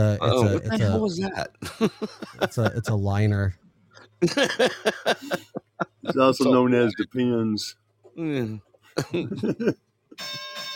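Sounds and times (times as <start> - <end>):
speech: 0.0 - 3.6, 4.2 - 10.7
laughter: 1.6 - 3.3, 4.2 - 7.0, 9.0 - 9.8
bell ringing: 10.2 - 10.7.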